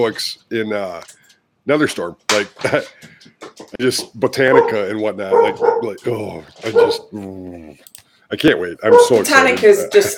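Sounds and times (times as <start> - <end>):
speech: 0.0 - 10.1
dog barking throatily: 4.5 - 6.0, 6.6 - 7.1, 8.8 - 9.4.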